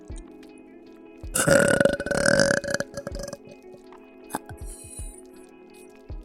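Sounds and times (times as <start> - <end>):
person burping: 1.4 - 3.5
soft breathy and clicking mouth sounds: 1.4 - 3.5, 4.3 - 5.2.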